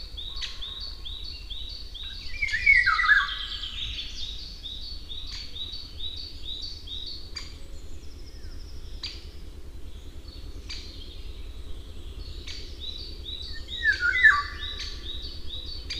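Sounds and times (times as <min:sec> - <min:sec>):
bird repeating high chirping notes: 0:00.0 - 0:15.9
Eurasian golden oriole giving loud fluty whistled phrases: 0:13.5 - 0:14.9.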